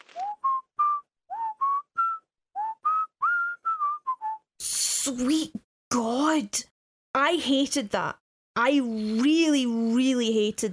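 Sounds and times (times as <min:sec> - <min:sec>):
person whistling a short melodic tune: 0:00.2 - 0:04.5
speech: 0:05.0 - 0:10.7.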